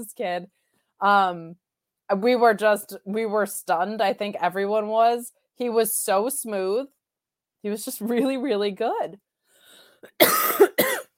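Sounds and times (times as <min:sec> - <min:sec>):
speech: 0:00.0 - 0:07.0, 0:07.6 - 0:09.2, 0:10.0 - 0:10.8
harsh raspy cough: 0:10.0 - 0:11.1.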